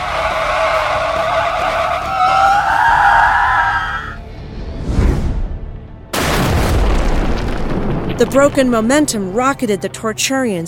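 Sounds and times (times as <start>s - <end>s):
car tires skidding as the brakes are hit: 0.0s - 4.2s
heavy crash of a car plummeting down a shaft: 6.1s - 8.8s
roaring impact with crunching debris: 6.1s - 9.1s
speech: 8.2s - 10.6s.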